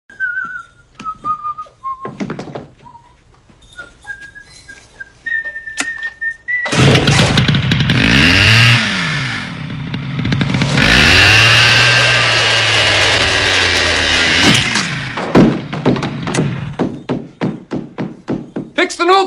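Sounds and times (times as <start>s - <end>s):
sharp wooden thunks: 6.7s - 7.9s, 14.3s - 18.8s
chainsaw revving and sawing through wood: 6.7s - 16.8s
speech: 19.0s - 19.2s.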